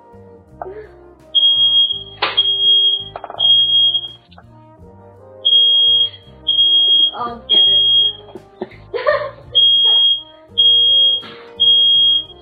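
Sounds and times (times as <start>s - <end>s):
soft music: 0.0s - 12.3s
speech: 0.1s - 1.1s, 7.2s - 7.5s
smoke alarm beeping: 1.4s - 4.4s, 5.4s - 8.3s, 9.6s - 12.3s.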